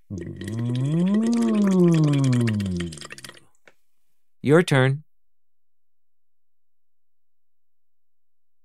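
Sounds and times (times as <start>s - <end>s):
voice humming through a straw into water: 0.0s - 3.4s
steady bubbling in water: 0.0s - 3.6s
speech: 4.5s - 5.0s.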